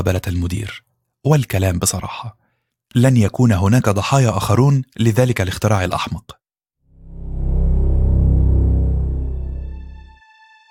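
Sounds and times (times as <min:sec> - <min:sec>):
speech: 0:00.0 - 0:06.4
deep loud rumble: 0:06.9 - 0:10.2.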